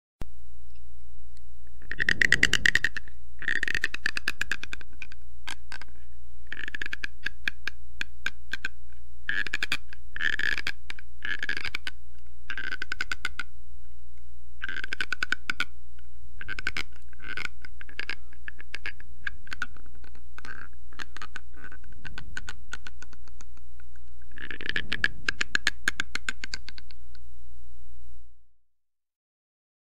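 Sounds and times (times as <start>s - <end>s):
teeth grinding: 1.8s - 13.5s, 14.6s - 15.7s, 16.4s - 27.0s.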